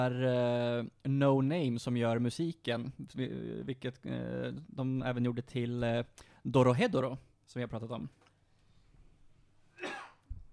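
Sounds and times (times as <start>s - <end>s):
speech: 0.0s - 8.2s
person coughing: 9.7s - 10.3s.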